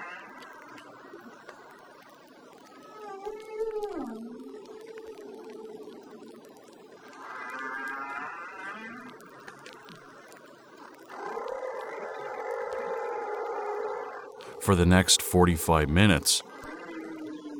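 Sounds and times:
humpback whale song: 0.0 - 1.4, 2.5 - 14.4, 16.5 - 17.5
speech: 14.6 - 16.5.

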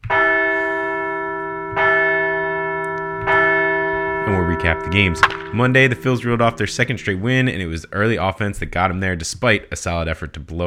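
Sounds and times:
bell ringing with a long shimmering hum: 0.1 - 7.7
speech: 4.6 - 10.6.

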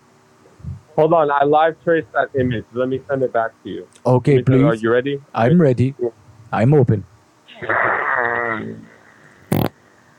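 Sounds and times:
speech: 1.0 - 8.9
voice imitating a fart with a buzzing wavering raspberry: 7.5 - 8.9, 9.5 - 9.8
short harsh burst of noise: 7.5 - 9.9.

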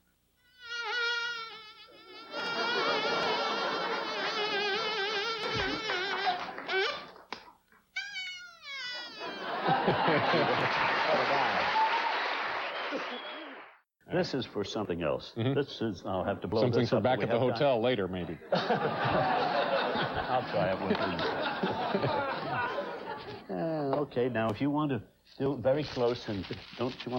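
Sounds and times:
insect buzzing sound effect: 0.4 - 7.0, 8.0 - 9.4
laughter: 2.2 - 6.7, 9.0 - 13.5, 16.2 - 23.6
speech: 14.2 - 22.8, 24.1 - 27.1.

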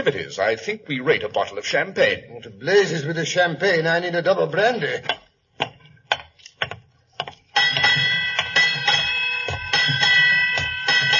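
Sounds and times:
speech: 0.0 - 5.2
ship's bell striking eight bells: 7.6 - 11.1.

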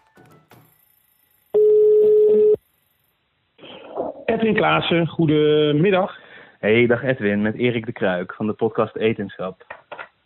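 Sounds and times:
ringback tone of outgoing phone call: 1.5 - 2.6
speech: 4.4 - 9.7.

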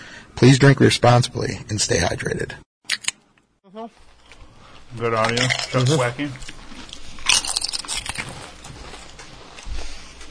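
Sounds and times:
speech: 0.4 - 2.6, 3.8 - 4.0, 4.9 - 6.5
crunchy bite and chewing: 6.4 - 10.2.

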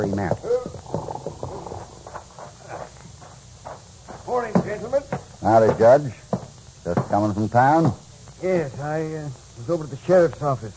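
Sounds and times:
speech: 0.0 - 0.6, 4.7 - 6.2, 6.9 - 10.7
paint horse's hooves clip-clopping at walking pace on hard ground: 0.1 - 7.2.

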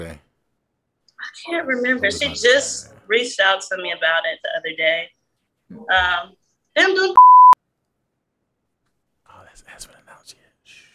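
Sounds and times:
speech: 1.3 - 7.4
censor bleep tone: 7.2 - 7.6.

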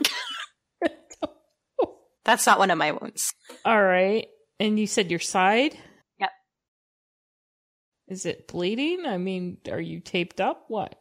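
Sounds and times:
person coughing harshly: 0.0 - 0.5
speech: 2.3 - 6.4, 8.1 - 10.9.

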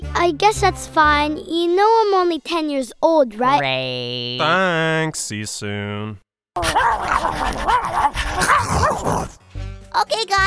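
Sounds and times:
speech: 0.2 - 9.4, 10.0 - 10.4
fenced-in dogs yipping and barking: 6.6 - 9.4.

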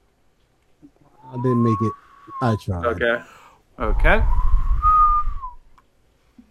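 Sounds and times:
faint chirp: 0.9 - 3.0
person whistling a single sustained note: 1.2 - 2.7, 4.2 - 5.6
speech: 1.4 - 4.5
low rumble: 3.6 - 5.7.

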